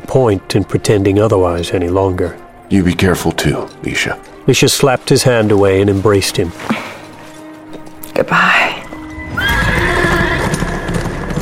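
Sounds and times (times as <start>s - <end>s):
speech: 0.1s - 6.9s, 8.2s - 8.8s
galloping horse hoofbeats: 1.2s - 11.4s
horse whinny: 9.2s - 11.4s.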